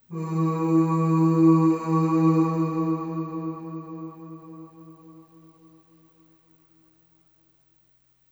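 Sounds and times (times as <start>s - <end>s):
voice saying ooh with long reverb: 0.1s - 5.4s.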